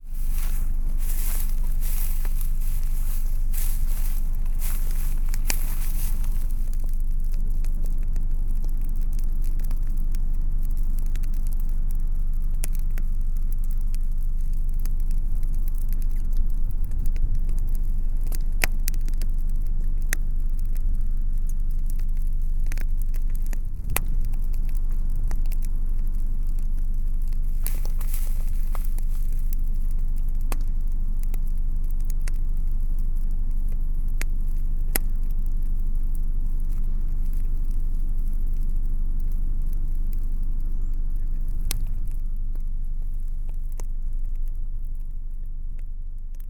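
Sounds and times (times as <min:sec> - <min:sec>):
grass burning in Sergiyev Posad: 0:00.0 - 0:46.4.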